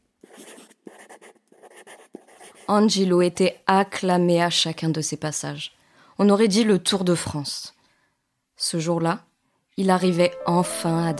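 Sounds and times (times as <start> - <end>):
pencil scratching on paper: 0.2 - 2.9
speech: 2.7 - 7.8, 8.6 - 11.1.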